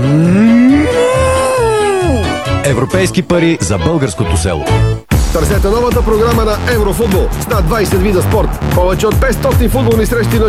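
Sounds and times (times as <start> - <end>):
cow on a dairy farm mooing: 0.0 - 2.4
speech: 2.8 - 10.4.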